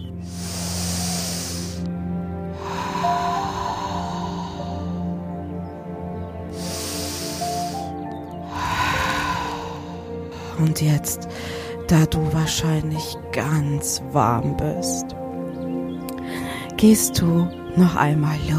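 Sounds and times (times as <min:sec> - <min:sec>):
slow deep conscious breathing during a guided exercise: 0:00.0 - 0:10.6, 0:11.2 - 0:11.8
sustained low musical drone: 0:00.0 - 0:18.5
speech: 0:10.6 - 0:15.2, 0:16.8 - 0:18.5.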